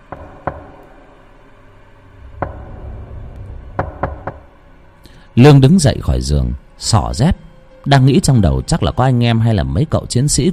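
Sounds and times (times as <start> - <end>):
low steady background: 0.0 - 10.5
knocking on a door at night: 0.1 - 0.8, 2.4 - 3.1, 3.7 - 4.6
speech: 5.4 - 10.5.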